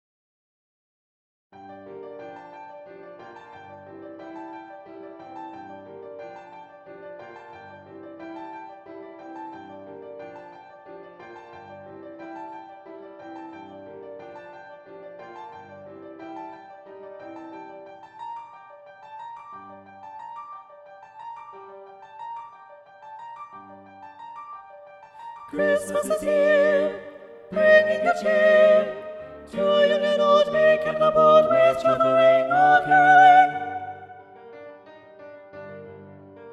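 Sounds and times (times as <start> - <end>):
four-part SATB choir singing with soprano predominant: 25.5 - 34.2.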